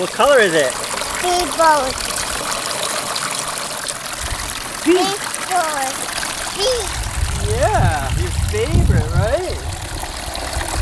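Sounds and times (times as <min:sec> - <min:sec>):
speech: 0:00.0 - 0:02.1, 0:04.8 - 0:09.7
water trickling and splashing in a children's water table: 0:00.0 - 0:10.8
brief high-pitched child vocalizations: 0:01.2 - 0:02.0, 0:04.9 - 0:07.6.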